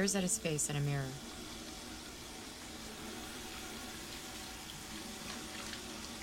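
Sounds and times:
speech: 0.0s - 1.5s
faucet running into a sink: 1.2s - 6.2s.

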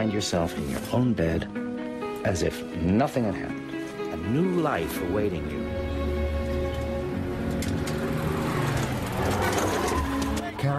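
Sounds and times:
speech: 0.0s - 1.6s, 2.2s - 5.8s
broadband road noise: 3.7s - 10.7s
heavy truck engine rumble passing close to a pedestrian: 5.4s - 10.7s.

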